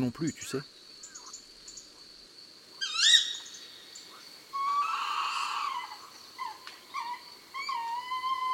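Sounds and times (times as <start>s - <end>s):
speech: 0.0s - 0.8s
tawny owl calling: 2.8s - 8.5s.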